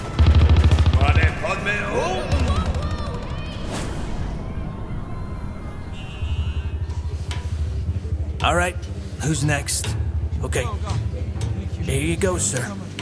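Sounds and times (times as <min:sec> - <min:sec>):
machine gun fire: 0:00.0 - 0:03.5
voices shouting: 0:01.0 - 0:08.3
speech: 0:08.4 - 0:11.0, 0:11.9 - 0:12.9.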